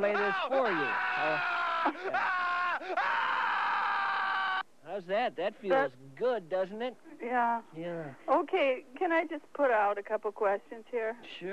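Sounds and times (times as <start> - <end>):
speech: 0.0 - 3.3, 4.9 - 11.5
person giving a primal scream: 0.1 - 4.6.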